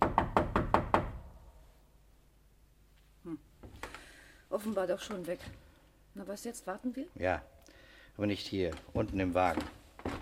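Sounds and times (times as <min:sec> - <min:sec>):
knocking on a door in a building corridor: 0:00.0 - 0:01.2
speech: 0:04.5 - 0:05.6, 0:06.2 - 0:07.6, 0:08.2 - 0:09.8.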